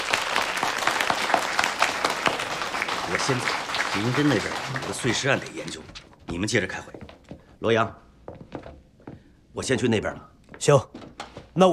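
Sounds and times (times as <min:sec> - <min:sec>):
room full of people applauding a new colleague: 0:00.0 - 0:06.0
speech: 0:03.1 - 0:07.0, 0:07.6 - 0:08.0, 0:09.6 - 0:11.0.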